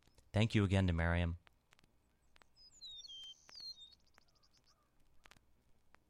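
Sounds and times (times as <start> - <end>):
speech: 0.4 - 1.4
clicks and pops of 1950s field recording: 1.4 - 4.3, 5.0 - 6.0
meadowlark singing whistles and trill: 2.1 - 5.4.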